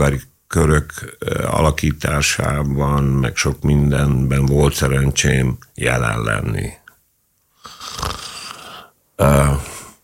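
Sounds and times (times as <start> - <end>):
speech: 0.0 - 6.8, 9.2 - 9.7
loud snore-like breath intake with throaty rattle: 7.6 - 10.0.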